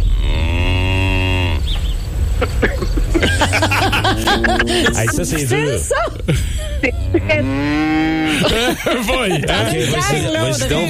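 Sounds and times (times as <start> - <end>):
cow mooing: 0.0 - 1.7, 3.4 - 5.1, 7.1 - 8.4
laughter: 2.4 - 7.4, 8.2 - 10.8
speech: 4.3 - 10.8.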